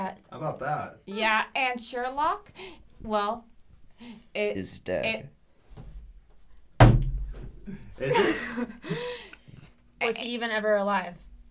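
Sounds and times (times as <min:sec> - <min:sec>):
speech: 0:00.0 - 0:05.4, 0:07.7 - 0:09.3, 0:10.0 - 0:11.2
door slamming shut: 0:06.8 - 0:07.6
people chuckling laughter: 0:07.7 - 0:09.2.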